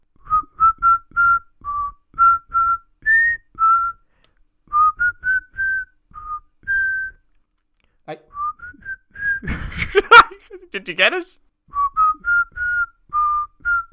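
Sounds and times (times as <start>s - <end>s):
person whistling a theme tune: 0.2s - 7.3s, 8.3s - 9.8s, 11.7s - 13.9s
laughter: 9.4s - 10.7s
speech: 10.9s - 11.4s.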